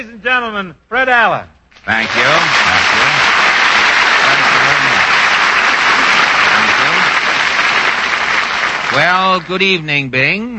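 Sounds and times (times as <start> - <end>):
speech: 0.0 - 3.3, 9.0 - 10.5
large indoor studio audience applause: 1.9 - 9.7.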